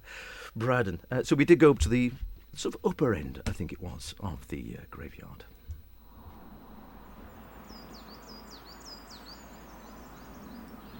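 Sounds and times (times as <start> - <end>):
steady outdoor hum: 0.0 - 10.9
speech: 0.6 - 5.6
birdsong at the upper end of a graveyard: 6.0 - 10.9.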